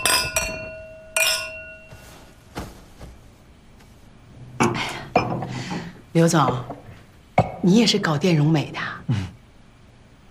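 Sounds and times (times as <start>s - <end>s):
glasses clinking in a toast at a meal: 0.0s - 2.2s, 4.6s - 7.6s
speech: 6.2s - 6.8s, 7.6s - 9.4s.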